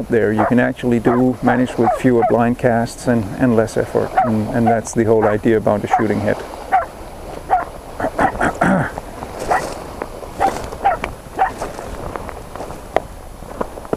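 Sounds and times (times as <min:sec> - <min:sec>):
speech: 0:00.0 - 0:06.6
faint outdoor rustling: 0:00.0 - 0:13.9
dog barking: 0:00.4 - 0:02.4, 0:04.2 - 0:06.9, 0:07.5 - 0:08.4, 0:09.4 - 0:09.7, 0:10.4 - 0:11.6.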